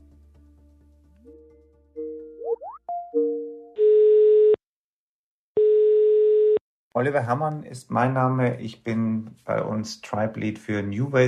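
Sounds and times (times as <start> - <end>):
telephone tones from a call to a telecom company: 3.8 - 4.6, 5.6 - 6.6
speech: 7.0 - 11.2.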